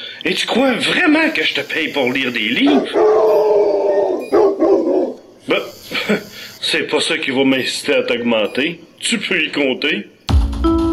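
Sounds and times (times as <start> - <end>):
speech: 0.2 - 3.7, 5.5 - 10.2
dog howling: 2.6 - 5.2
laughter: 5.9 - 6.3.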